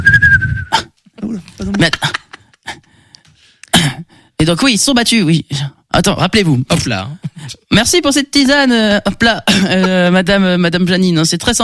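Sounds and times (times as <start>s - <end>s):
person whistling: 0.0s - 0.9s
speech: 1.3s - 2.2s, 4.5s - 11.6s.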